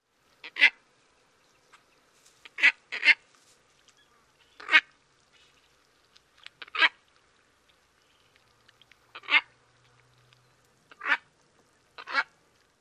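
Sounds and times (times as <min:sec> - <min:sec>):
White-faced Ibis nasal quacks: 0:00.4 - 0:00.8, 0:02.4 - 0:03.2, 0:04.1 - 0:04.9, 0:06.6 - 0:07.0, 0:09.1 - 0:09.5, 0:10.9 - 0:11.3, 0:12.0 - 0:12.3.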